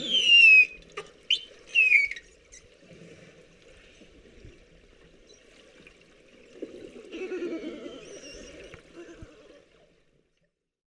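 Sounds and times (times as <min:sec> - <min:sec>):
beluga whistles: 0:00.0 - 0:02.2.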